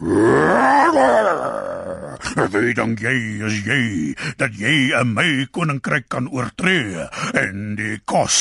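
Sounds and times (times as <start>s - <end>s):
human voice imitating a lion roaring: 0.0s - 2.4s
speech: 2.4s - 8.3s.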